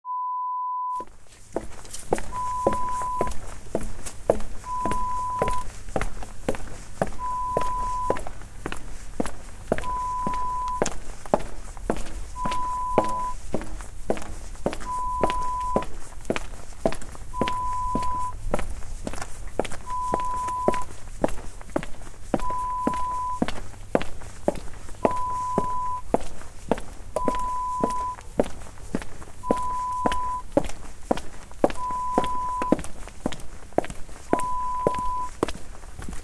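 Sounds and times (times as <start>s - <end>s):
footsteps in an alley: 1.0s - 36.2s.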